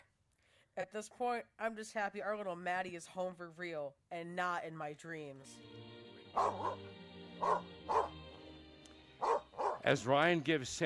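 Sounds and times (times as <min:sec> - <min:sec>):
speech: 0:00.8 - 0:08.0, 0:09.8 - 0:10.8
dog barking: 0:06.4 - 0:08.2, 0:09.2 - 0:09.9.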